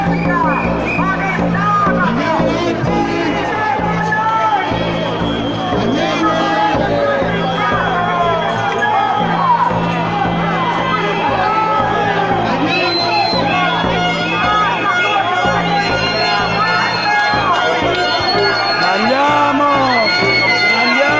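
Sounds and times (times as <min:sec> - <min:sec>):
dense crowd of voices talking and shouting at a street protest march: 0:00.0 - 0:21.1
raised calls: 0:03.9 - 0:21.1
thin high whistle-like tones: 0:04.6 - 0:06.7, 0:07.3 - 0:08.8, 0:12.6 - 0:21.1.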